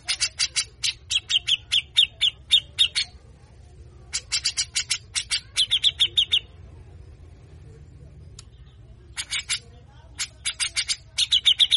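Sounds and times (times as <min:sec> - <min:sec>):
grey-cheeked bulbul uttering rasping notes: 0:00.0 - 0:03.2, 0:04.1 - 0:06.6, 0:09.2 - 0:11.7.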